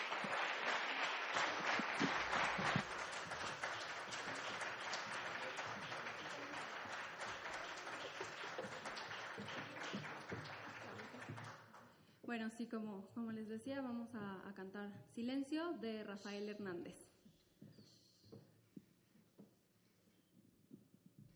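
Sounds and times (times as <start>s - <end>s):
audience applause: 0.0s - 11.8s
speech: 12.3s - 17.1s.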